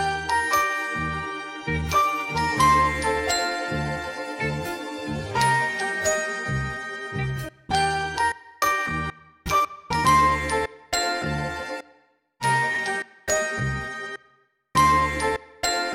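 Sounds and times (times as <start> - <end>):
sampled bells and vibraphone melody: 0.0 - 11.8, 12.4 - 14.2, 14.8 - 15.9.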